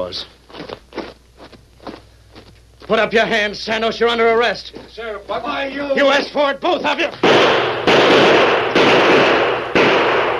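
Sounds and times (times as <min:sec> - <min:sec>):
speech: 0:00.0 - 0:00.7, 0:02.9 - 0:08.4
revolver gunshots as a radio-drama sound effect: 0:07.2 - 0:10.3.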